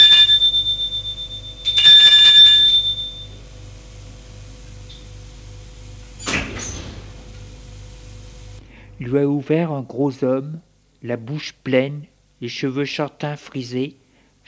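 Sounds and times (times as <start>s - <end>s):
apartment doorbell ringing with a bright metallic ring: 0.0s - 3.4s
low steady hum: 0.0s - 13.0s
speech: 9.0s - 14.4s.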